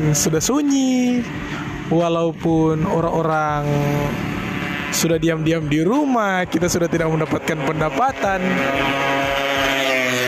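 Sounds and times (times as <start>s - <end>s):
speech: 0.0s - 9.2s
motorcycle engine roaring as the bike speeds along the street: 0.0s - 10.2s.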